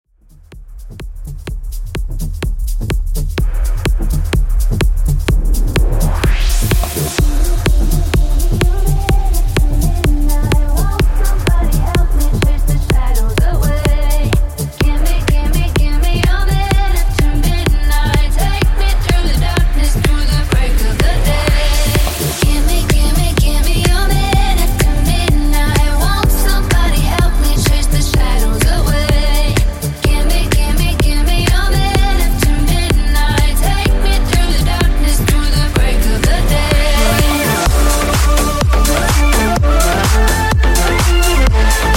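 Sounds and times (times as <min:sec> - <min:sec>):
bass house music at 126 BPM: 0:00.0 - 0:41.9.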